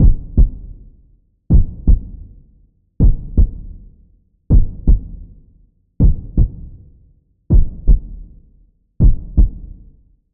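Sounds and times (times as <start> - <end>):
heartbeat: 0.0 - 0.7, 1.5 - 2.3, 3.0 - 3.8, 4.5 - 5.3, 6.0 - 6.7, 7.5 - 8.3, 9.0 - 9.8.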